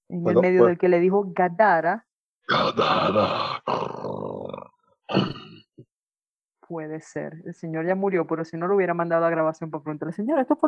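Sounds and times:
speech: 0:00.1 - 0:03.9, 0:05.1 - 0:05.3, 0:06.7 - 0:10.6
harsh raspy animal grunt rising into a growling groan: 0:02.5 - 0:05.6.

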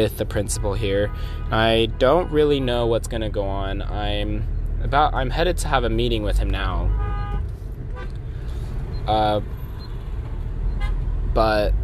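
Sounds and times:
speech: 0:00.0 - 0:07.1, 0:09.0 - 0:09.6, 0:11.3 - 0:11.8
low rumble of road traffic while stuck in traffic: 0:00.0 - 0:11.8
short car horn toot: 0:00.3 - 0:02.8, 0:06.7 - 0:08.2, 0:10.7 - 0:11.1.

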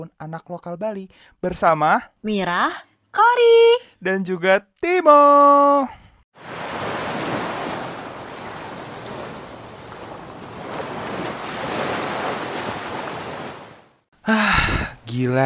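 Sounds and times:
speech: 0:00.0 - 0:06.6, 0:14.3 - 0:15.4
ocean surf washing onto a beach: 0:06.4 - 0:14.0.

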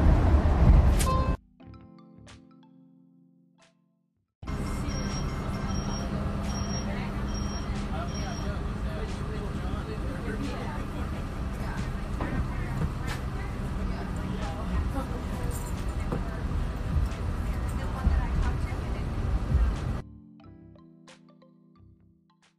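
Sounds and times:
street traffic rumble: 0:00.0 - 0:01.4, 0:04.4 - 0:20.0
vehicles roaring past: 0:04.4 - 0:20.0.

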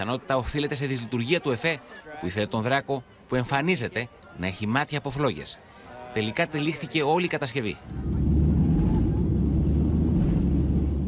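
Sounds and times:
speech: 0:00.0 - 0:08.1
airplane engine roaring just after takeoff with fire in the engine: 0:07.8 - 0:11.0.

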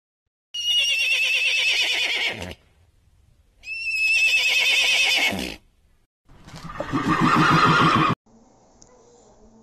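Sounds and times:
horse neighing: 0:00.6 - 0:02.6, 0:03.6 - 0:05.6, 0:06.6 - 0:08.2.

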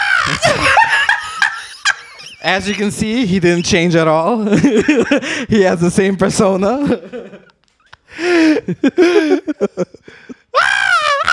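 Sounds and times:
laughter: 0:00.2 - 0:03.3, 0:04.4 - 0:05.3, 0:06.8 - 0:10.4
man squawking and chirping in a bird-like voice: 0:02.2 - 0:04.0
speech: 0:02.4 - 0:07.5, 0:08.1 - 0:10.0.

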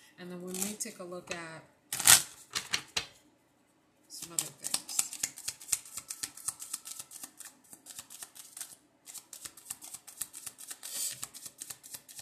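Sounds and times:
speech: 0:00.2 - 0:01.8, 0:04.3 - 0:04.8
emotion cards being pulled out and shuffled: 0:04.2 - 0:12.2.

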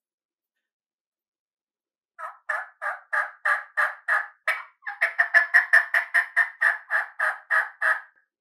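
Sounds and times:
turkey hen cut yelps made on a mouth call: 0:02.2 - 0:08.1.

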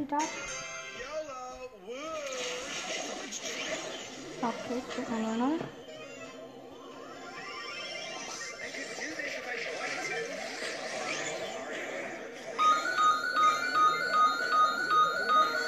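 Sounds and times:
speech: 0:00.0 - 0:00.7, 0:04.4 - 0:05.8
voices and chatter: 0:00.9 - 0:12.7
telephone ringing with electronic tone: 0:12.6 - 0:15.6.

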